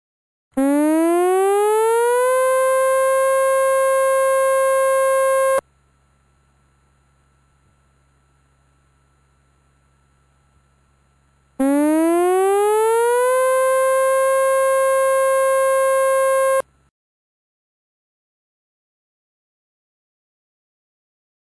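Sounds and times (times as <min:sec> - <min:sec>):
civil defense siren in Wakayama Prefecture Japan for tsunami warning: 0:00.6 - 0:05.6, 0:11.6 - 0:16.6
faint low hum: 0:00.8 - 0:16.9.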